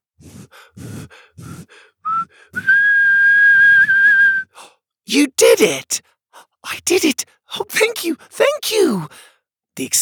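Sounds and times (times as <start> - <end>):
person whistling a sustained tone: 2.0 - 4.6
speech: 5.1 - 10.0.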